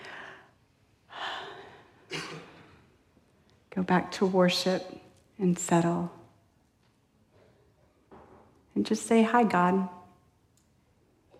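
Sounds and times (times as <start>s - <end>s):
deep breathing in a quiet worship setting: 0.0s - 2.8s
speech: 3.8s - 6.2s, 8.8s - 10.0s.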